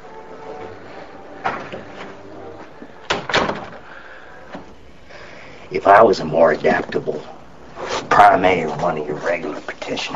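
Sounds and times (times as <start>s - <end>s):
low steady hum: 0.0s - 10.1s
door being shut: 3.0s - 3.9s
speech: 5.7s - 7.4s, 8.2s - 10.1s.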